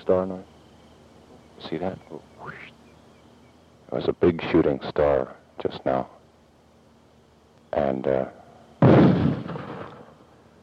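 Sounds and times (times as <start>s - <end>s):
speech: 0.0s - 0.5s, 1.6s - 2.7s, 3.9s - 6.2s, 7.7s - 9.2s
mortar firing blast with rolling rumble: 8.8s - 10.2s.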